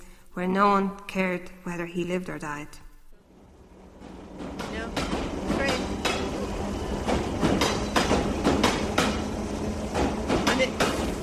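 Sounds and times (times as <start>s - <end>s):
speech: 0.4s - 2.8s
underground train running with wheels clattering: 3.2s - 11.2s.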